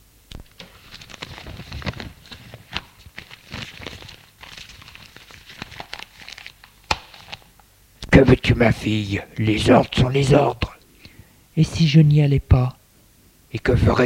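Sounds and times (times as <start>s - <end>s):
newspaper being folded: 0.4s - 7.6s
speech: 8.2s - 10.7s, 11.6s - 12.8s, 13.5s - 14.0s.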